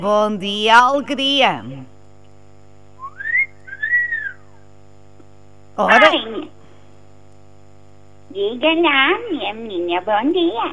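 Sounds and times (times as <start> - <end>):
speech: 0.0 - 1.8, 5.8 - 6.6, 8.3 - 10.7
person whistling melodic phrases: 3.0 - 4.5.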